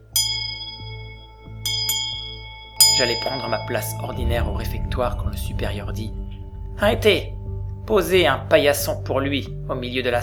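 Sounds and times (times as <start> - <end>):
low steady hum: 0.0 - 10.2
bell ringing to call the community to dinner in a refectory: 0.2 - 4.7
speech: 3.0 - 6.2, 6.8 - 10.2.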